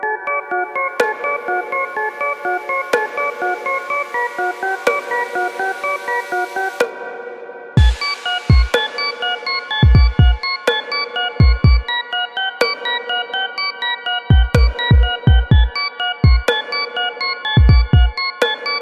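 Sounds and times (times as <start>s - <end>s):
beat ringtone: 0.2s - 18.7s.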